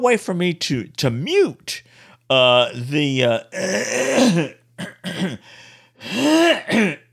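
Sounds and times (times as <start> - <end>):
speech: 0.0 - 7.1
person clearing throat: 3.6 - 5.4, 6.1 - 7.1.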